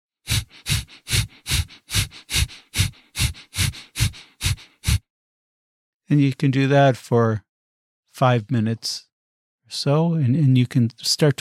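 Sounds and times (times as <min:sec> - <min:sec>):
rapid forceful nasal breathing in the breath of fire yogic exercise: 0:00.2 - 0:05.1
speech: 0:06.1 - 0:07.5, 0:08.2 - 0:09.1, 0:09.7 - 0:11.3.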